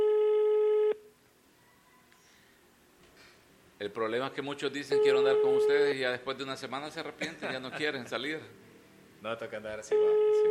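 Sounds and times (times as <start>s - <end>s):
electronic telephone tone on an outgoing call: 0.0s - 1.0s, 5.0s - 5.8s, 9.9s - 10.4s
faint hiss: 0.9s - 10.4s
speech: 3.8s - 10.4s
laughter: 7.1s - 8.5s.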